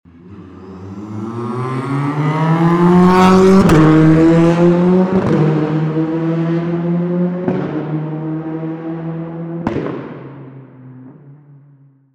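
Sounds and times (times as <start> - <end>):
TCR engine at full throttle: 0.1 - 9.6.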